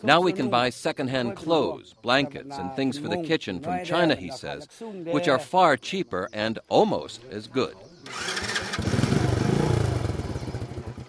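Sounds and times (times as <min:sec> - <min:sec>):
speech: 0:00.0 - 0:09.0
Chinese motorcycle engine starting and idling: 0:08.0 - 0:11.0.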